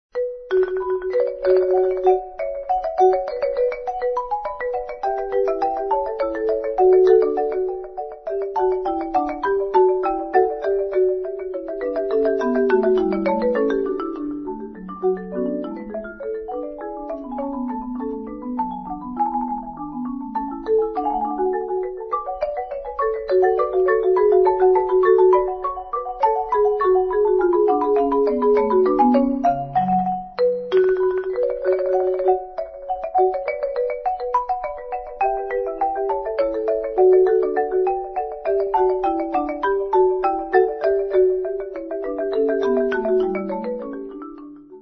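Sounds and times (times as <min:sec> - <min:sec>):
classical gigue: 0:00.7 - 0:44.8.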